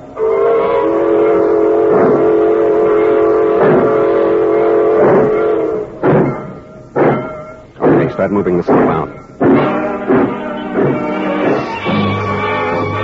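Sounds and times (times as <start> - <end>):
sustained tonal horn-like drone of freight train: 0.0 - 6.0, 9.4 - 13.0
freight train pulling out and rumbling: 0.0 - 13.0
freight train wagons clanking: 1.3 - 13.0
speech: 8.2 - 9.3.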